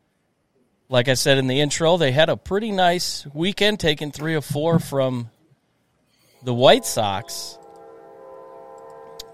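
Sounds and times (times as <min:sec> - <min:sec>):
speech: 0:00.9 - 0:05.4, 0:06.4 - 0:07.6
train passing: 0:06.4 - 0:09.3.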